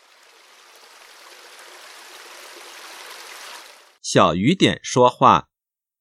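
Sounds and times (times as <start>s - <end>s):
babbling stream water flowing: 0.0s - 4.0s
speech: 4.1s - 5.5s.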